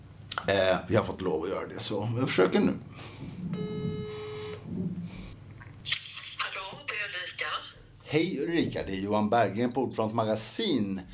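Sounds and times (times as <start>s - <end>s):
speech: 0.5s - 4.0s, 8.1s - 11.1s
telephone ringing tone while placing a call through a handset: 3.6s - 4.7s.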